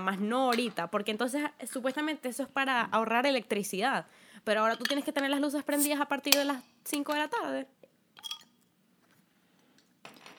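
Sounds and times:
speech: 0.0 - 8.3
bottle opener clinking against bottle cap: 8.2 - 8.6.

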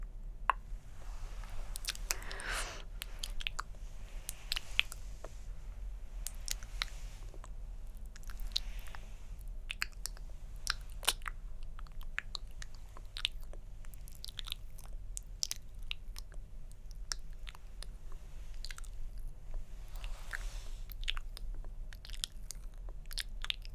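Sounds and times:
low steady hum: 0.0 - 23.7
hand movements: 0.8 - 5.6
quiet mouth sounds: 1.4 - 3.7.

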